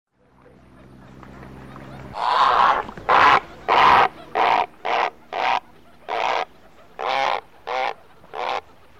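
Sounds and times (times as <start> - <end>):
grey heron calling: 2.1 - 8.9.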